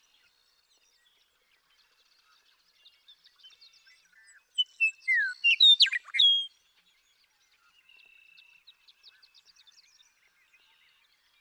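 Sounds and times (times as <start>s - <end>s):
male western meadowlark singing in Sierra Valley, eastern California: 4.0s - 6.6s.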